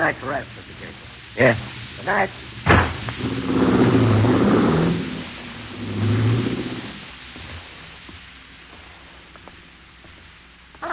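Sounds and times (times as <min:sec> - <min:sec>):
speech: 0:00.1 - 0:02.5
police car engine revving and pulling away: 0:02.6 - 0:07.0.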